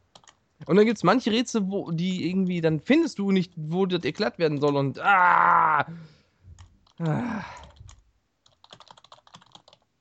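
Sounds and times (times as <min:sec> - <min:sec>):
forceful typing on a computer keyboard: 0:00.1 - 0:00.4, 0:06.6 - 0:09.9
speech: 0:00.6 - 0:06.2, 0:07.0 - 0:07.6.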